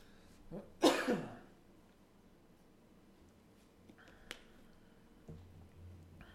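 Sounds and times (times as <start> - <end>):
person coughing from a throat tickle: 0.6 - 1.5.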